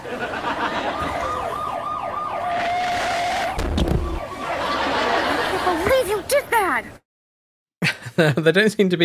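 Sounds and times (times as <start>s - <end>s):
laughter: 0.0s - 1.3s, 4.4s - 6.0s
ambulance siren wailing: 0.4s - 5.3s
speech: 8.2s - 9.0s.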